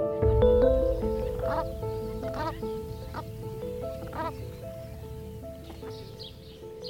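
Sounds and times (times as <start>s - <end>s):
sustained tonal hum: 0.2s - 6.7s
outdoor ambience: 0.2s - 6.8s
ducks quacking: 0.6s - 6.8s.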